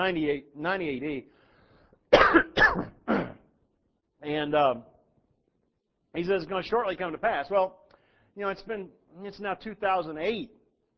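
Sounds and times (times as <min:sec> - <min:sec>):
speech: 0:00.0 - 0:01.4, 0:02.2 - 0:03.2, 0:04.2 - 0:04.9, 0:06.1 - 0:07.8, 0:08.4 - 0:10.6
person clearing throat and coughing during a spoken sermon: 0:02.1 - 0:03.6.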